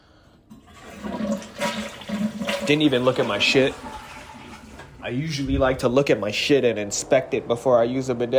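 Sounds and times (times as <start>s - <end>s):
toilet flushing: 0.3s - 5.2s
speech: 2.7s - 4.0s, 5.0s - 8.3s.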